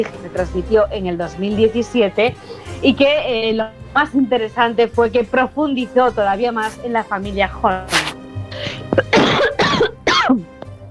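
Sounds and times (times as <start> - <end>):
speech: 0.0 - 8.0
harsh coughs: 7.9 - 10.5
throat clearing: 7.9 - 10.5.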